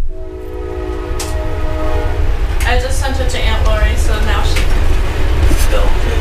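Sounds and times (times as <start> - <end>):
train rumbling past with heavy clattering: 0.0 - 6.1
faint voices: 2.6 - 6.1.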